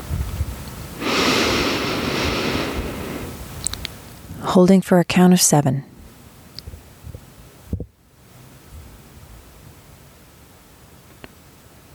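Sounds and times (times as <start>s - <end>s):
slow inhale through the nose during a breathing exercise: 1.0s - 3.6s
speech: 4.5s - 5.9s.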